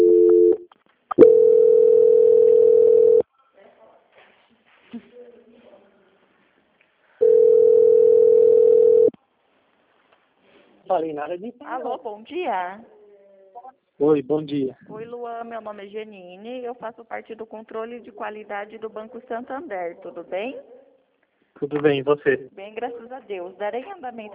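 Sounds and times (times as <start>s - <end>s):
phone line tones during bank call transfer: 0.0s - 3.2s, 7.2s - 9.1s
speech: 11.0s - 13.0s, 14.0s - 20.8s, 21.6s - 24.3s.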